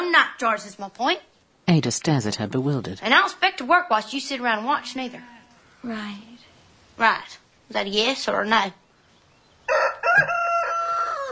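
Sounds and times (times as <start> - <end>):
speech: 0.2 - 8.8, 9.7 - 10.4
rooster crowing: 9.7 - 11.3.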